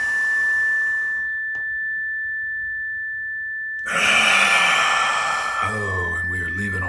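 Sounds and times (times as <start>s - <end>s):
faint steady tone: 0.0s - 6.8s
slow deep breathing during a guided breathing exercise: 3.9s - 6.2s.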